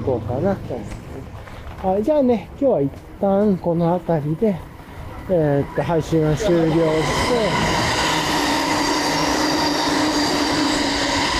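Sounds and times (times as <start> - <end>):
speech: 0.0 - 1.0, 1.8 - 4.7, 5.3 - 7.8
fast limited express train passing: 4.1 - 11.3
faint squealing tones: 4.6 - 11.3.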